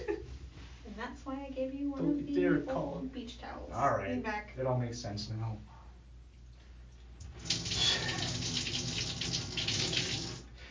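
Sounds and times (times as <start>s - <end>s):
speech: 1.5s - 5.8s
tap water running to rinse hair: 7.2s - 10.5s.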